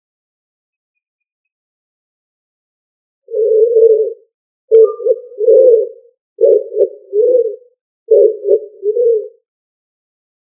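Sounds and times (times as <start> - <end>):
pigeon cooing: 3.3 - 9.5.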